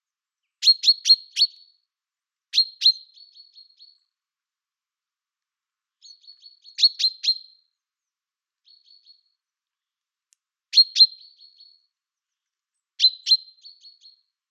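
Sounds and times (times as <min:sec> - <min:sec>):
common chaffinch Fringilla coelebs chirping: 0:00.4 - 0:01.9, 0:02.5 - 0:04.1, 0:06.0 - 0:07.7, 0:08.6 - 0:10.0, 0:10.7 - 0:14.3.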